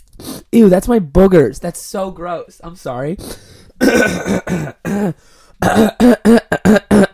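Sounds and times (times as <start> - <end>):
speech: 0.5 - 7.0
person clearing throat: 3.8 - 7.1.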